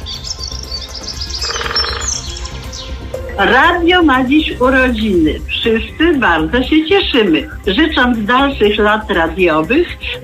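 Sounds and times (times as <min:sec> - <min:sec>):
birds chirping and squabbling: 0:00.0 - 0:03.4
speech: 0:03.4 - 0:10.2.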